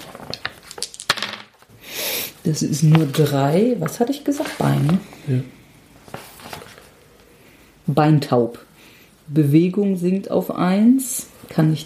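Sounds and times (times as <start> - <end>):
hundred-sided die clattering across a hard tabletop: 0.3 - 1.6
speech: 2.5 - 5.6, 8.0 - 8.7, 9.3 - 11.8.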